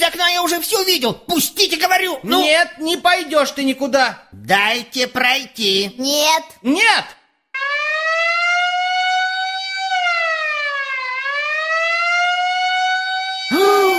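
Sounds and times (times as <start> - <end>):
speech: 0.0 - 7.2
fire engine siren wailing: 7.6 - 13.9.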